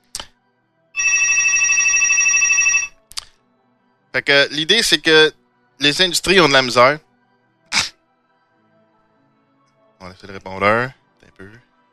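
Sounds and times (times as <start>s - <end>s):
telephone ringing: 1.0s - 3.0s
brief clicks: 3.1s - 3.4s
speech: 4.2s - 7.1s, 10.2s - 11.7s.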